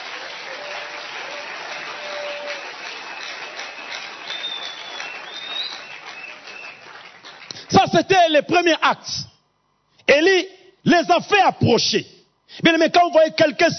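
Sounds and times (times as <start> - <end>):
church congregation applauding during a service: 0.0 - 7.9
speech: 7.8 - 9.3, 10.1 - 13.7.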